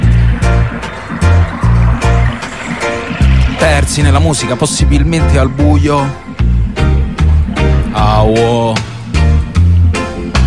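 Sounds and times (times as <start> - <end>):
rushing flowing water: 0.0 - 5.3
loud throbbing bassline with sharp rhythmic hits: 0.0 - 10.4
speech: 3.9 - 6.2, 8.0 - 8.9.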